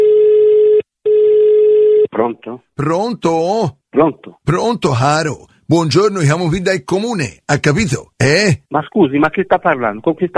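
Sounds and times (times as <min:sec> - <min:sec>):
telephone tone while a call is dialed: 0:00.0 - 0:02.1
speech: 0:02.2 - 0:10.3.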